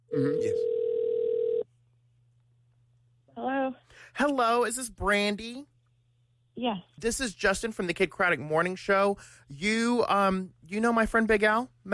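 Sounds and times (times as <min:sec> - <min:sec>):
speech: 0:00.2 - 0:00.7, 0:04.2 - 0:05.7, 0:06.6 - 0:11.9
telephone ringback tone over a phone line: 0:00.4 - 0:01.6.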